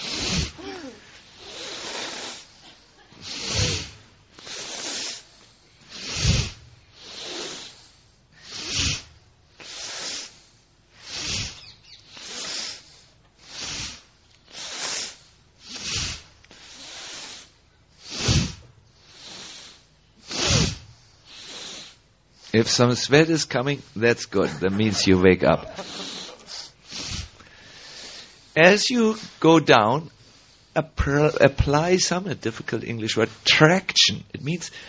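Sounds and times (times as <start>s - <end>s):
deep breathing in and out during a physical exercise: 0.0s - 29.5s, 30.1s - 31.5s, 34.5s - 34.8s
speech: 22.6s - 26.0s, 28.6s - 30.2s, 30.8s - 34.8s
laughter: 24.1s - 26.7s.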